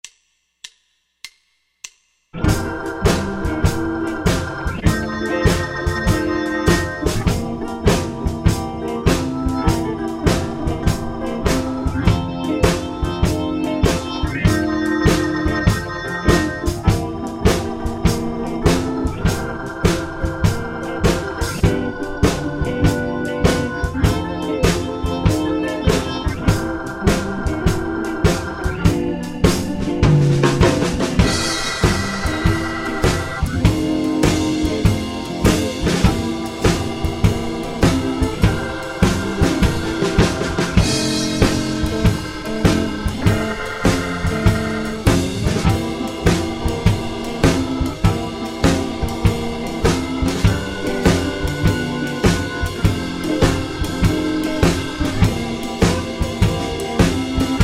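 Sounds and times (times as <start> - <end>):
beginner blues turnaround in C: 2.4 - 57.6.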